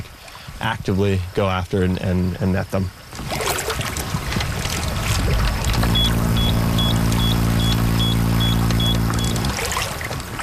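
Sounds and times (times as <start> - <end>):
noisy outdoor background by the water: 0.0 - 10.4
loud low mechanical hum: 0.2 - 10.4
speech: 0.6 - 3.0
electrofishing unit warning beeps: 5.8 - 9.6.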